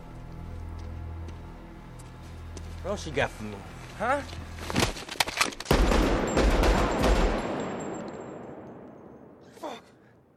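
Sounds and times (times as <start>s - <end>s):
speech: 2.8s - 4.8s
gunshots in a film scene: 5.7s - 9.6s.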